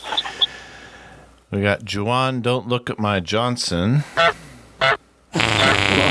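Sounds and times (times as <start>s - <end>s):
speech: 1.5s - 4.4s
goose honking sound effect: 4.2s - 6.0s.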